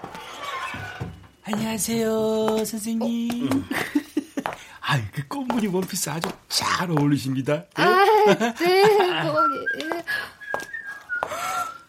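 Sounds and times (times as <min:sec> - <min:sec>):
speech: 0:01.5 - 0:04.0, 0:04.9 - 0:10.2
laughter: 0:03.4 - 0:04.5, 0:07.8 - 0:10.2
person whistling a thin sustained tune: 0:09.3 - 0:11.8.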